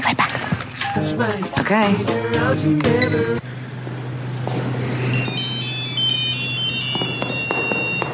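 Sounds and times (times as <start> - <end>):
low constant hum: 0.0 - 8.1
speech: 1.0 - 3.5
cell phone ringing with bright electronic notes: 5.0 - 8.1.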